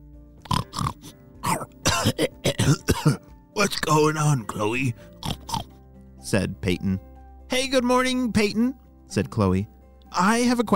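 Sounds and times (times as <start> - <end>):
voice imitating pig grunts and snorts: 0.4 - 3.2, 5.2 - 5.7
speech: 2.0 - 2.8, 3.6 - 5.1, 6.3 - 10.7.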